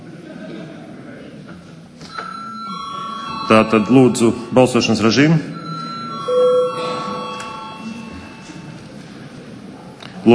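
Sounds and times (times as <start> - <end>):
murmur of voices: 0.0 - 10.3
voting bell ringing in the Saeima chamber in Latvia: 2.1 - 9.2
speech: 3.5 - 5.5.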